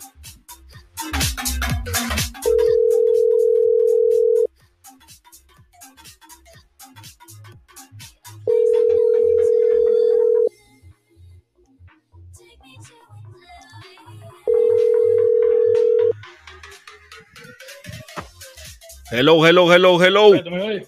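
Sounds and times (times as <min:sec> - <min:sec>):
telephone ringback tone while placing a call: 0:02.5 - 0:04.5, 0:08.5 - 0:10.5, 0:14.5 - 0:16.2
speech: 0:19.2 - 0:20.8.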